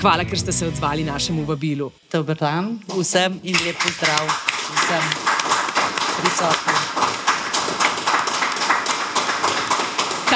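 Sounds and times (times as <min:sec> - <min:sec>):
speech: 0:00.0 - 0:05.3, 0:06.2 - 0:06.9
audience clapping: 0:03.5 - 0:10.3.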